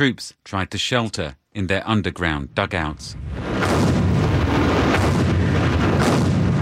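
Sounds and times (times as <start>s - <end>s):
speech: 0.0s - 4.0s
massive British and French artillery bombardment of German frontline defences: 3.2s - 6.5s.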